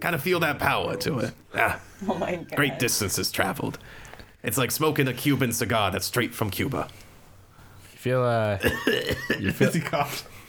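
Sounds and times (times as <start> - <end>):
speech: 0.0 - 7.0, 8.0 - 10.4
loud voice imitating a rough old-man hacking cough: 8.6 - 9.5.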